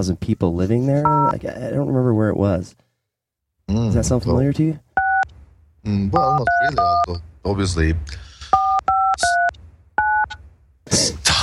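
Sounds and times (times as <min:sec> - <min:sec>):
speech: 0:00.0 - 0:02.8, 0:03.7 - 0:04.8, 0:05.8 - 0:08.3, 0:10.9 - 0:11.4
telephone keypad dialing tones: 0:08.6 - 0:10.3.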